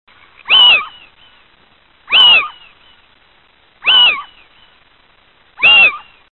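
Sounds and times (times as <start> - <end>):
female Athene owl: 0.4 - 1.3, 2.1 - 3.0, 3.8 - 4.5, 5.6 - 6.2.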